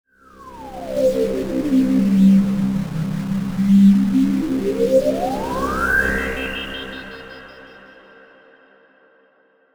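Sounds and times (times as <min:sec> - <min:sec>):
synthetic swell: 0:00.7 - 0:07.5.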